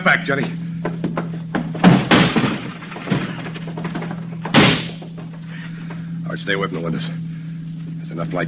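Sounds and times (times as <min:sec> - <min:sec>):
steady low hum: 0:00.0 - 0:08.4
speech: 0:00.1 - 0:00.6, 0:06.4 - 0:07.2, 0:08.1 - 0:08.4
heavy booming thuds on a door: 0:00.9 - 0:05.4
rattling impacts: 0:00.9 - 0:06.1.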